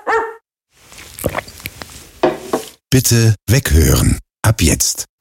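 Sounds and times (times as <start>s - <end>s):
dog barking: 0.0s - 0.4s
speech: 3.0s - 5.1s.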